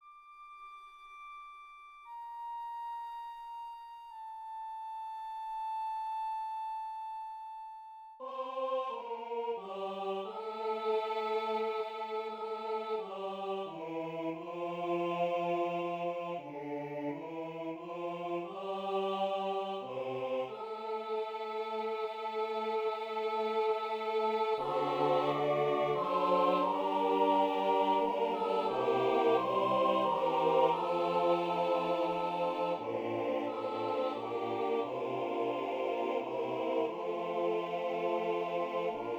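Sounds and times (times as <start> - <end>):
flute playing: 0.0 - 8.2, 24.6 - 35.4
choir singing: 8.2 - 39.1.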